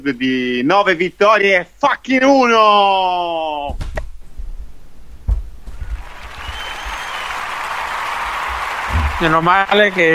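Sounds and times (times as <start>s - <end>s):
speech: 0.0s - 3.8s, 9.2s - 10.1s
dull thumps: 3.7s - 6.0s
crowd applauding: 5.7s - 10.1s.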